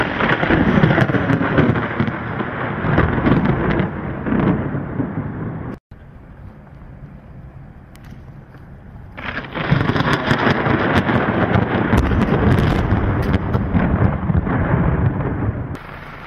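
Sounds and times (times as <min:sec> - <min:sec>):
thunder: 0:00.0 - 0:05.8, 0:09.2 - 0:16.2
rain: 0:00.0 - 0:16.2.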